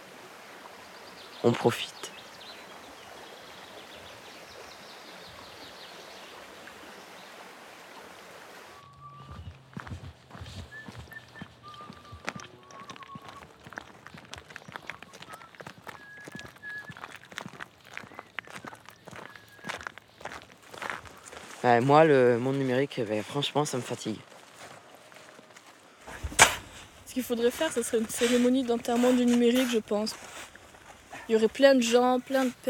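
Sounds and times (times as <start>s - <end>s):
birds chirping: 0.7s - 32.6s
speech: 1.4s - 2.0s, 21.7s - 24.3s, 27.2s - 30.3s, 31.3s - 32.6s
footsteps crunching along a country path across open plain: 9.2s - 32.6s.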